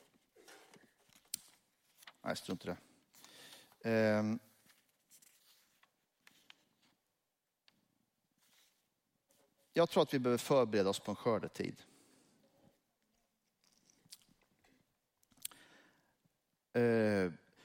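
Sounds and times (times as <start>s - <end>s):
sheets of paper rustling and shuffling: 0.0s - 2.6s, 4.5s - 7.0s
speech: 2.2s - 2.9s, 3.8s - 4.5s, 9.8s - 11.9s.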